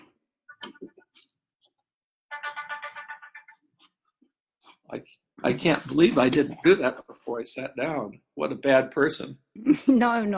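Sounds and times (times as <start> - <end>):
phone ringtone playing a bright electronic melody: 2.3 - 3.6
speech: 4.9 - 10.3.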